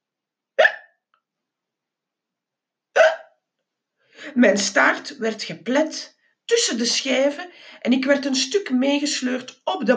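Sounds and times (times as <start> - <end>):
person hiccuping at an airport baggage carousel: 0.6 - 0.9, 3.0 - 3.3
speech: 4.2 - 9.9.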